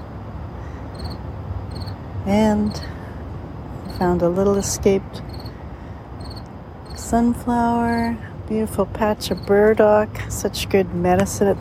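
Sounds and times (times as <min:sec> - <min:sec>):
steady low outdoor rumble: 0:00.0 - 0:11.5
cricket chirping: 0:00.9 - 0:02.0, 0:05.2 - 0:05.6, 0:06.2 - 0:07.0, 0:09.3 - 0:09.5
speech: 0:02.3 - 0:03.0, 0:04.0 - 0:05.3, 0:07.1 - 0:11.5.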